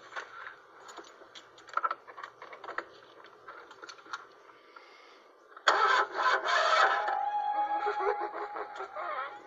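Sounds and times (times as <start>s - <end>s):
clicks and rattles: 0.1s - 4.4s
car engine cranking and failing to start: 5.6s - 7.2s
laughter: 7.8s - 9.4s.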